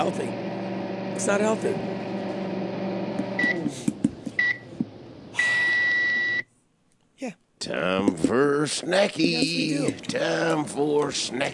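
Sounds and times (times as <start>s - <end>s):
speech: 0.0s - 0.4s, 1.2s - 2.0s, 7.7s - 11.5s
microwave oven humming: 0.0s - 6.4s
microwave oven short high beeps and long beep: 3.3s - 3.7s, 4.4s - 4.7s, 5.4s - 6.4s.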